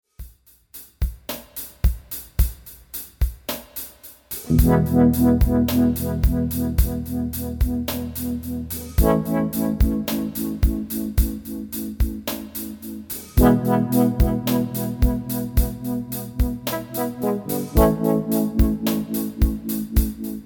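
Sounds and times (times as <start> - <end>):
eighth note tremolo filter effect: 4.5 - 20.4.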